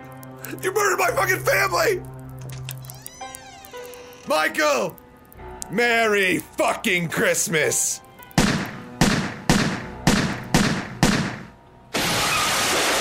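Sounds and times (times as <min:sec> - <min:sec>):
speech: 0:00.5 - 0:02.1, 0:04.2 - 0:05.0, 0:05.7 - 0:08.0
gunshots in a rapid series of sharp cracks: 0:08.4 - 0:12.9.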